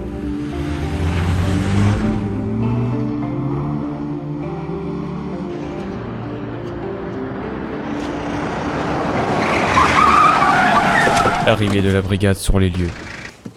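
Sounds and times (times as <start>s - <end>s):
police car engine revving and pulling away: 0.0s - 11.9s
car tires skidding and squealing on the road: 7.8s - 12.0s
speech: 11.5s - 13.1s.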